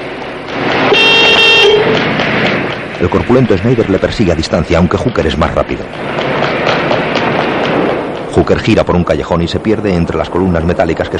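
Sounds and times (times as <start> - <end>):
steady street traffic rumble: 0.0 - 11.1
car horn blaring in street traffic: 0.9 - 2.0
speech: 3.0 - 6.4, 8.4 - 11.1.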